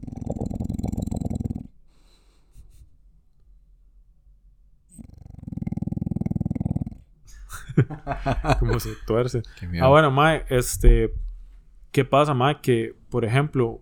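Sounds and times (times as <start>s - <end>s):
sleeping dog snoring: 0.0s - 1.8s, 4.9s - 7.2s
laughter: 7.3s - 10.0s
speech: 7.8s - 11.2s, 11.9s - 13.8s.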